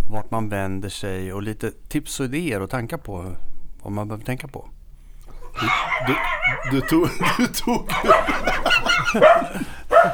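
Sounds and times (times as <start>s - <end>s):
speech: 0.1s - 4.8s, 5.6s - 10.1s
several dogs barking and yipping outside a studio: 5.2s - 10.1s
laughter: 5.3s - 10.1s.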